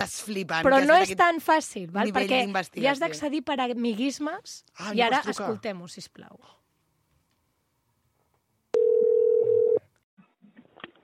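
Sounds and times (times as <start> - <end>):
speech: 0.0 - 6.6
telephone dial tone of an outgoing call: 8.8 - 9.8.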